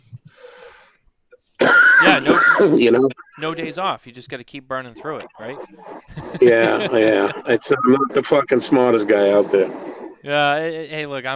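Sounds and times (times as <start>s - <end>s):
wheezy raspy intake of breath from a sick smoker: 0.3s - 0.9s
loud harsh cough from a sick smoker: 1.6s - 2.8s
laughter: 2.0s - 3.9s, 6.1s - 9.7s
speech: 2.2s - 11.3s.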